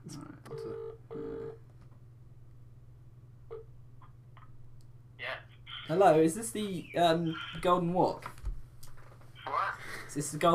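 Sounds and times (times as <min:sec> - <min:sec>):
telephone ringing tone on an outgoing call to a Chinese takeaway: 0:00.5 - 0:01.6
speech: 0:05.9 - 0:08.4, 0:10.1 - 0:10.5.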